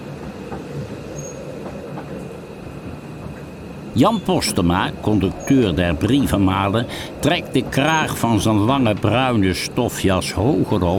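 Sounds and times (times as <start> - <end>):
faint rhythmic clacks from the rails: 0.0 - 10.9
moving train carriage rumbling: 0.0 - 10.9
thin high whine: 3.9 - 9.6
speech: 4.0 - 10.9.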